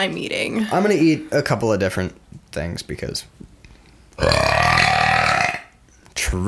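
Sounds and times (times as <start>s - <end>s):
speech: 0.0s - 3.5s, 4.2s - 4.8s
single loud drawn-out burp: 4.2s - 5.8s.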